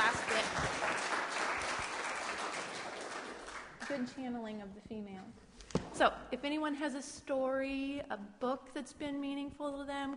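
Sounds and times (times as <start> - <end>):
audience applause after a talk: 0.0 - 4.0
speech: 4.0 - 10.1.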